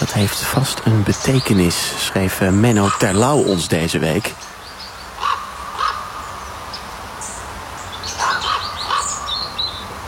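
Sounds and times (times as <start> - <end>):
common raven calling outdoors near Lochem: 0.0 - 4.3, 5.1 - 6.4, 8.0 - 9.8
faint chirping birds: 0.0 - 10.0
speech: 0.2 - 4.4.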